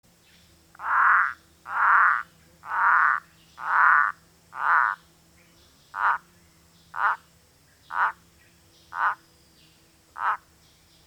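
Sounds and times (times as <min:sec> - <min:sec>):
Limnonectes hascheanus frog: 0:00.7 - 0:05.0, 0:05.9 - 0:06.3, 0:06.9 - 0:08.2, 0:08.9 - 0:09.2, 0:10.1 - 0:10.5.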